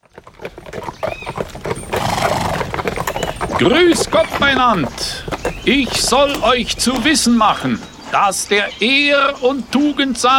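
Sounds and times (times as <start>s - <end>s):
hooves of horses ridden through a village clip-clopping: 0.0s - 9.3s
horse neighing: 0.7s - 7.7s
speech: 3.6s - 10.3s.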